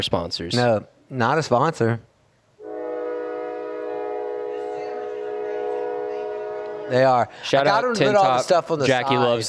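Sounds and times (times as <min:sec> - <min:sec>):
speech: 0:00.0 - 0:02.1, 0:06.9 - 0:09.4
train horn blast at a railroad track in Clear, Alabama: 0:02.6 - 0:07.4.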